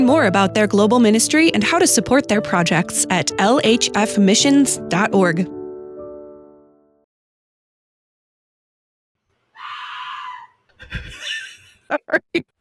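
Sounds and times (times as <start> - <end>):
speech: 0.0 - 5.6, 11.9 - 12.5
teenager's shrill scream from another room: 9.6 - 10.6.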